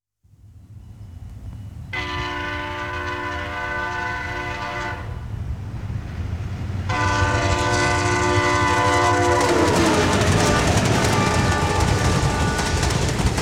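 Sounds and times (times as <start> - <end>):
Amtrak diesel train horns: 1.9 - 5.6, 6.8 - 13.3.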